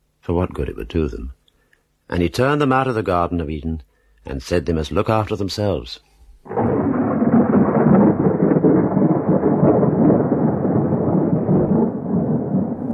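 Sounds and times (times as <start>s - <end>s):
speech: 0.2s - 1.4s, 2.1s - 6.7s
deep sustained thunderstorm rumble: 6.4s - 12.9s
dense wash of heavy rain: 6.5s - 12.9s.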